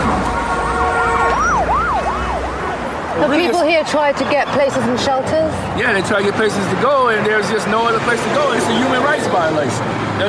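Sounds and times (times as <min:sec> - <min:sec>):
police car siren yelping: 0:00.0 - 0:05.1
low rumble of street traffic: 0:00.0 - 0:10.2
speech: 0:03.8 - 0:10.2.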